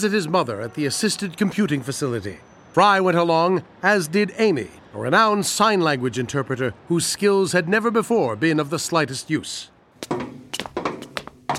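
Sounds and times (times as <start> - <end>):
speech: 0.0 - 10.3
knocking on a door: 10.0 - 11.5.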